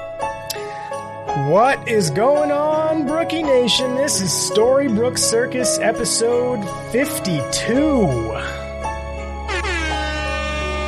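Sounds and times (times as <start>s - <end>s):
speech: 1.4s - 8.5s
air horn blast: 9.4s - 10.8s.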